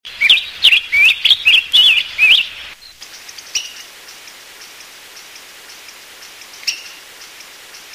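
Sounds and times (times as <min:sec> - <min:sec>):
hawfinch calling: 0:00.1 - 0:02.8, 0:06.5 - 0:07.4.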